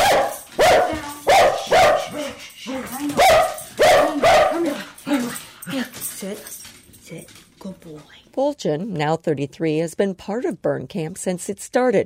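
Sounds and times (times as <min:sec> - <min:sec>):
dog barking fiercely: 0:00.0 - 0:02.4, 0:03.2 - 0:04.9
speech: 0:08.5 - 0:12.0.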